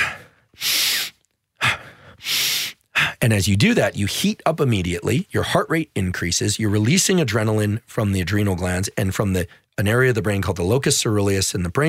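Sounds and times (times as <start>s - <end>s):
Wim Hof style vigorous inhales and passive exhales through the mouth: 0.0s - 3.2s
speech: 3.2s - 11.8s.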